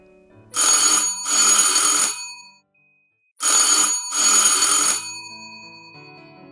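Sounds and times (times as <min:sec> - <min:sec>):
doorbell ringing in bright jangling bursts: 0:00.6 - 0:02.7, 0:03.4 - 0:06.4.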